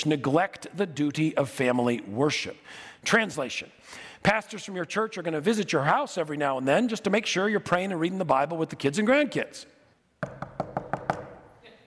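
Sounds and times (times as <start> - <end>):
speech: 0.0 - 10.6
knocking on a door: 10.2 - 11.4.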